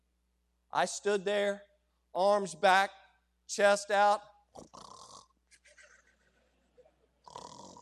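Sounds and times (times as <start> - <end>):
speech: 0.7 - 4.9
voice imitating loud snoring: 4.6 - 5.3, 7.2 - 7.8.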